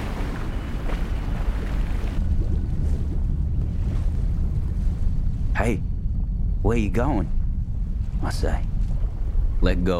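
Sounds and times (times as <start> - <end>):
steady ocean surf: 0.0 - 2.2
wind buffeting the microphone: 0.0 - 9.9
speech: 5.7 - 5.9, 6.7 - 7.4, 8.2 - 8.7, 9.6 - 9.9.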